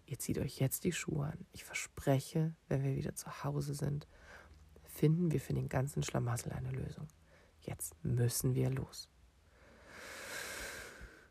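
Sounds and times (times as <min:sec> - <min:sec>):
speech: 0:00.1 - 0:04.4, 0:05.0 - 0:09.1
single long slow breath: 0:09.5 - 0:11.2.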